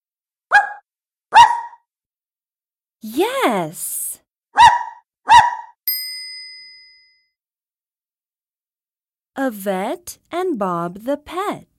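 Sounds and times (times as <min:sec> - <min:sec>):
puppy barking: 0:00.5 - 0:01.8, 0:04.6 - 0:05.8
speech: 0:03.0 - 0:04.0, 0:09.4 - 0:11.7.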